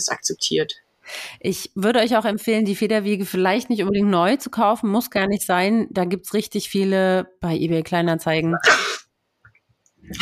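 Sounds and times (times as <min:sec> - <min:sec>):
speech: 0:00.0 - 0:09.0
sneeze: 0:08.6 - 0:09.1.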